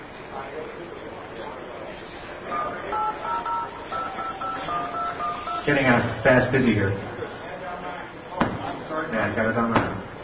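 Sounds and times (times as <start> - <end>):
faint murmur: 0.0 - 10.2
speech: 0.4 - 3.2, 5.6 - 7.1, 9.1 - 9.9
touch-tone telephone dialing beeps: 2.5 - 5.7.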